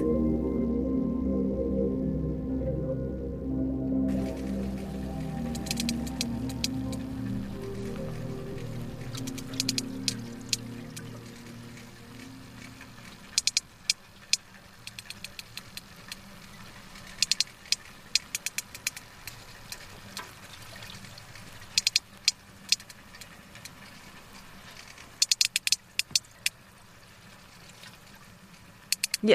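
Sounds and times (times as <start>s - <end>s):
low underwater rumble: 0.0s - 13.8s
water noise: 0.0s - 29.3s
sperm whale coda click sequences: 5.4s - 20.4s, 21.0s - 26.6s, 28.8s - 29.3s.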